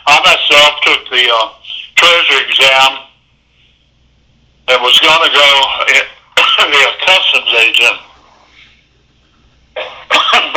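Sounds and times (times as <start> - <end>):
speech: 0.5 - 3.1, 4.7 - 8.1, 9.8 - 10.5
person coughing: 9.8 - 10.5.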